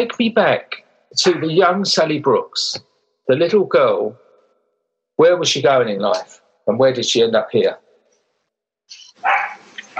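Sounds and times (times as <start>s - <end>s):
speech: 0.0s - 4.2s, 5.2s - 7.8s
dog barking: 9.2s - 9.9s.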